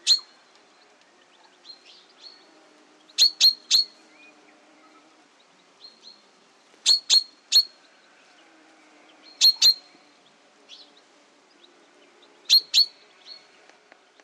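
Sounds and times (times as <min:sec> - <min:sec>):
Common chaffinch crisp piercing chip calls: 0:00.0 - 0:00.4, 0:03.2 - 0:04.0, 0:06.8 - 0:07.8, 0:09.3 - 0:09.9, 0:12.5 - 0:13.0.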